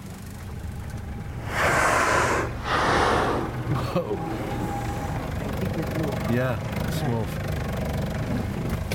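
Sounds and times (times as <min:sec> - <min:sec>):
steady low boat engine rumble: 0:00.0 - 0:08.9
blue whale blow, loud snorting exhale: 0:01.4 - 0:03.7
speech: 0:03.9 - 0:04.6, 0:06.3 - 0:07.5.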